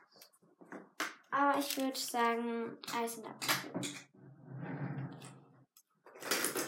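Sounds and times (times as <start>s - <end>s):
speech: 1.4s - 4.1s
desk pedestal drawer sliding out with a rumbling scrape: 4.2s - 5.6s.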